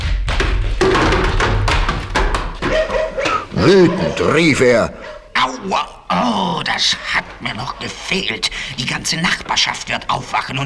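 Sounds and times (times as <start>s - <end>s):
wooden barrels tumbling and rolling with dull thuds: 0.2s - 3.0s
speech: 3.6s - 10.6s.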